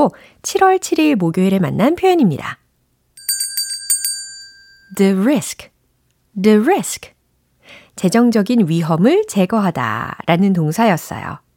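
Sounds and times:
speech: 0.0s - 2.6s, 5.0s - 5.7s, 6.4s - 11.4s
bright ding-dong-dang bell chime: 3.2s - 5.1s.

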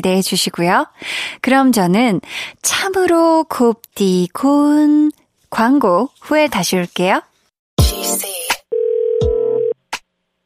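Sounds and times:
speech: 0.0s - 7.3s
electronic telephone ringback tone: 8.7s - 9.8s.

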